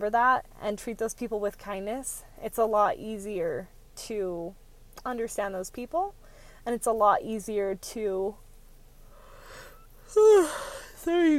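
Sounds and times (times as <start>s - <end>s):
speech: 0.0s - 8.4s, 10.1s - 11.3s
person yawning: 10.2s - 10.9s.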